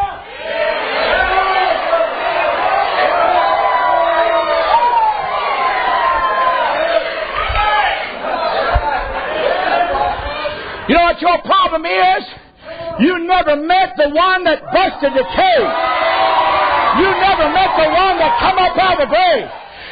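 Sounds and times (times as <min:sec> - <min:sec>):
large audience shouting and praising: 0:00.0 - 0:11.2, 0:14.4 - 0:19.9
whoops: 0:03.3 - 0:06.7
speech: 0:11.2 - 0:12.4, 0:13.0 - 0:15.8, 0:17.0 - 0:19.6.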